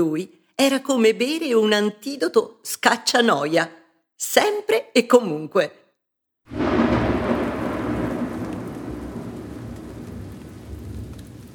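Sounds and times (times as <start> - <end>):
speech: 0.0 - 5.8
deep rumbling undertone beneath the downpour: 6.5 - 10.4
heavy rain pouring outside: 6.5 - 11.5.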